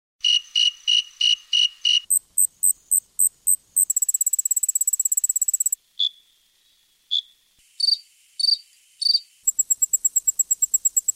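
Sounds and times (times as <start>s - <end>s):
crickets chirping: 0.2s - 11.1s.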